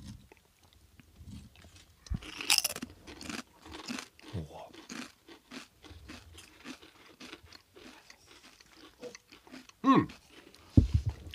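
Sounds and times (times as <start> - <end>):
chewing crispy scorched cheese: 0.0 - 11.3
people talking: 4.4 - 4.7, 9.8 - 10.1.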